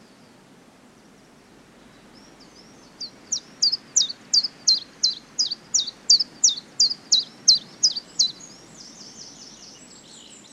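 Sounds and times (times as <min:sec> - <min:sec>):
soft background noise: 0:00.0 - 0:10.5
common chiffchaff singing on a slightly windy day: 0:03.3 - 0:08.4.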